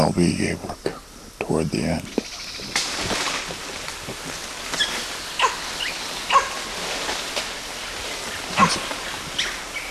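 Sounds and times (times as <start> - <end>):
speech: 0.0 - 0.8, 1.5 - 2.3
steady hiss of outdoor noise: 0.0 - 9.9
animal barking: 4.8 - 6.8, 8.4 - 9.6.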